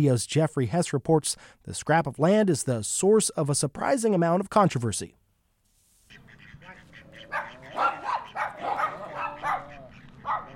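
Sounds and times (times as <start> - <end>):
speech: 0.0 - 5.2
dog barking in a park: 7.2 - 10.5.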